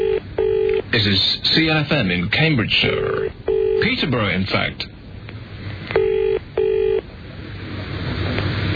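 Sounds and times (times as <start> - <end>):
telephone ringback tone of a call to a radio studio phone: 0.0 - 0.8, 3.0 - 3.9, 6.0 - 7.0
low hum: 0.0 - 8.7
speech: 0.9 - 4.9.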